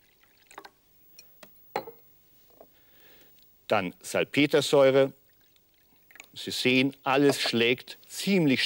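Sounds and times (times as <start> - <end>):
acid poured into a glass: 0.0 - 0.8, 5.2 - 6.4
speech: 3.7 - 5.2, 6.4 - 8.6.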